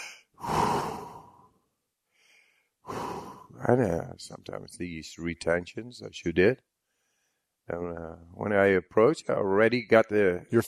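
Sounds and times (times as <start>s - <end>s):
slow relaxed breathing before a dive: 0.0s - 3.8s, 6.8s - 7.6s
speech: 3.7s - 6.7s, 7.7s - 10.6s.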